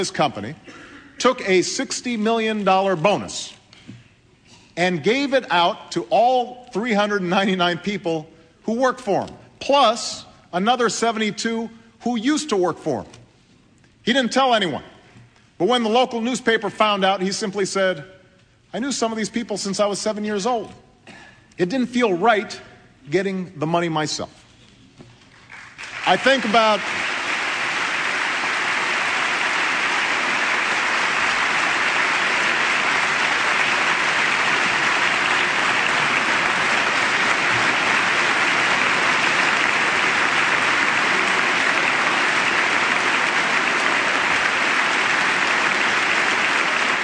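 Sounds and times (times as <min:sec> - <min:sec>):
speech: 0:00.0 - 0:03.6, 0:04.8 - 0:13.2, 0:14.0 - 0:14.9, 0:15.6 - 0:20.8, 0:21.6 - 0:24.4, 0:26.1 - 0:27.0
sustained applause from many people in a legislative chamber: 0:25.4 - 0:47.0.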